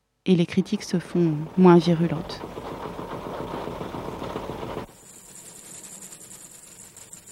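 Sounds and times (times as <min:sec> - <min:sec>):
speech: 0:00.2 - 0:02.6
old taxi car engines running and idling: 0:00.5 - 0:05.0.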